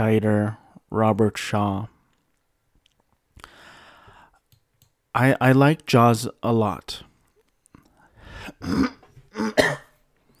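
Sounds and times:
speech: 0.0 - 1.9, 5.2 - 7.1, 8.6 - 9.8
person coughing harsh phlegmy coughs: 8.5 - 10.0
raspy throat clearing: 8.5 - 10.0.

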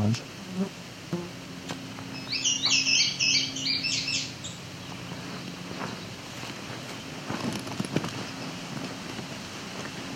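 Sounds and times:
male indigo bunting song with paired buzzy sweet notes: 0.0 - 7.2, 8.1 - 8.7
low background hum: 0.0 - 10.1.

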